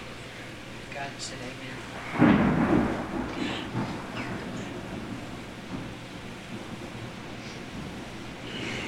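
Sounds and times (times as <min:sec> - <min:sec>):
wind and rain during a storm: 0:00.0 - 0:08.8
speech: 0:01.0 - 0:02.4
deep rolling thunder during a storm: 0:01.8 - 0:08.8.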